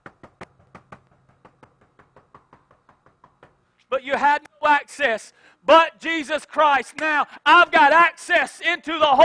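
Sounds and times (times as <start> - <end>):
sharp knocking: 0.0 - 3.7
speech: 3.9 - 9.2.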